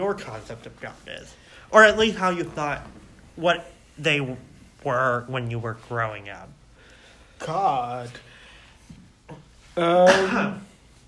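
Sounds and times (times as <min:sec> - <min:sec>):
speech: 0:00.0 - 0:06.6, 0:07.4 - 0:08.3, 0:09.3 - 0:10.7
person coughing: 0:09.3 - 0:10.8.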